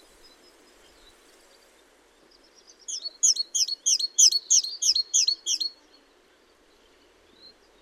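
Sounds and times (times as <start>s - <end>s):
great tit Parus major calling: 2.9s - 5.7s.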